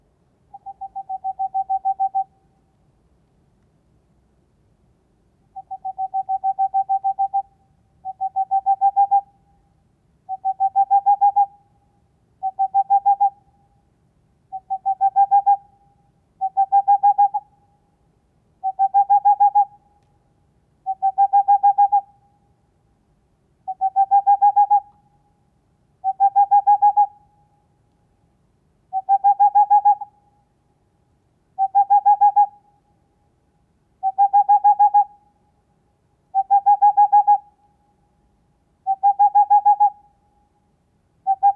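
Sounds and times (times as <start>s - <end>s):
male Tengmalm's owl hooting: 0.5s - 2.3s, 5.6s - 9.3s, 10.3s - 11.6s, 12.4s - 13.4s, 14.5s - 15.7s, 16.4s - 17.5s, 18.6s - 19.8s, 20.9s - 22.1s, 23.7s - 24.9s, 26.0s - 27.2s, 28.9s - 30.2s, 31.6s - 32.6s, 34.0s - 35.2s, 36.3s - 37.6s, 38.8s - 40.1s, 41.2s - 41.5s.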